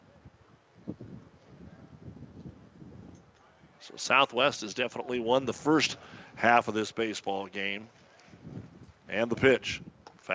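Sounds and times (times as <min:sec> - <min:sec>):
wind gusting across outdoor ballfield buffeting the microphone: 0:00.0 - 0:03.8, 0:05.2 - 0:06.6, 0:08.3 - 0:10.3
faint indistinct voices: 0:00.0 - 0:10.3
speech: 0:03.8 - 0:08.0, 0:09.1 - 0:10.3.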